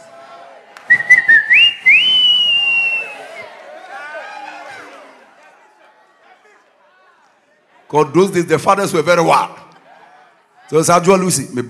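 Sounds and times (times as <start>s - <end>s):
person whistling loudly to call someone: 0.9s - 3.4s
speech: 7.9s - 9.6s, 10.7s - 11.6s.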